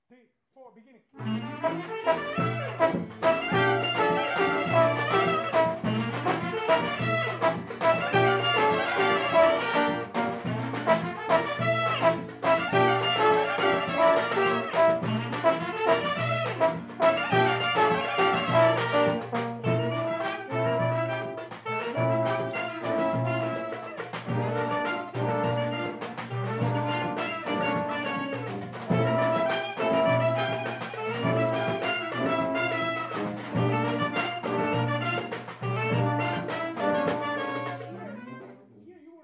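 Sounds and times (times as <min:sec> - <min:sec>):
shuffle music at a rehearsal in Thailand: 0:01.3 - 0:38.0.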